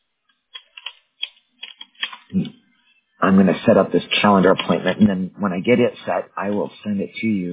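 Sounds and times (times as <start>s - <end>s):
typing on a computer keyboard: 0.5s - 2.3s
speech: 2.3s - 2.6s, 3.3s - 7.5s.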